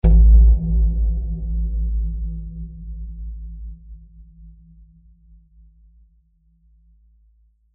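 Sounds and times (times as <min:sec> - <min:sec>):
tribal drum hit with reverb and low bass: 0:00.0 - 0:04.8.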